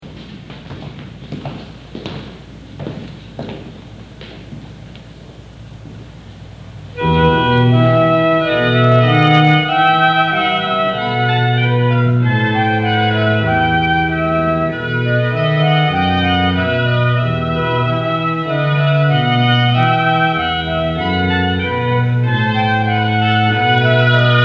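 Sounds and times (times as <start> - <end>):
organ playing a wedding march: 6.8 - 24.4
flute playing a wedding march: 7.0 - 24.4
oboe playing a wedding march: 7.0 - 24.4.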